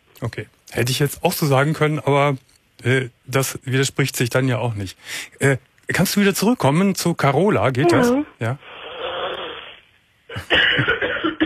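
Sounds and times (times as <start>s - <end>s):
speech: 0.2s - 8.7s, 10.4s - 11.1s
person coughing harshly: 10.3s - 11.4s.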